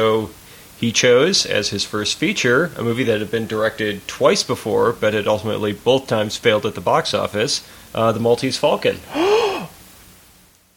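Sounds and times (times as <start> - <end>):
speech: 0.0 - 9.4
person gasping in surprise: 9.0 - 9.8.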